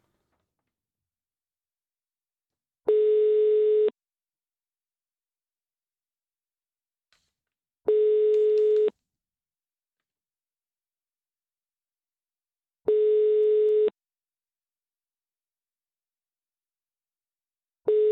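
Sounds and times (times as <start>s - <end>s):
phone line ringback tone on an unanswered outgoing call: 2.9s - 3.9s, 7.9s - 8.9s, 12.9s - 13.9s, 17.9s - 18.1s.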